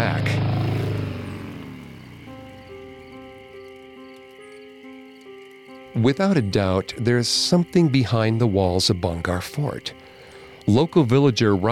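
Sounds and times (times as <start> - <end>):
car engine starting and rumbling: 0.0 - 8.5
speech: 6.0 - 11.7.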